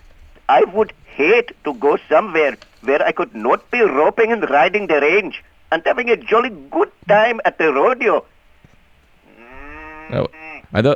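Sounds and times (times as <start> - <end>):
speech: 0.5 - 8.3, 10.1 - 10.9
Texas longhorn cattle mooing: 9.2 - 10.8.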